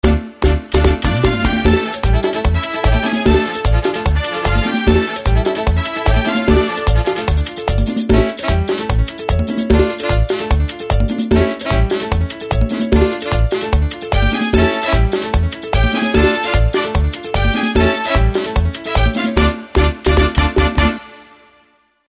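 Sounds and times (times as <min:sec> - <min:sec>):
merengue music: 0:00.0 - 0:21.6.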